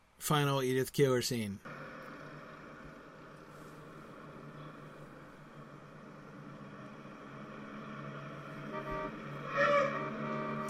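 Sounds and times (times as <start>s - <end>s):
speech: 0.2s - 1.7s
car engine droning in a film scene: 1.7s - 10.6s
car tires squealing as the car screeches to a halt: 4.4s - 10.6s.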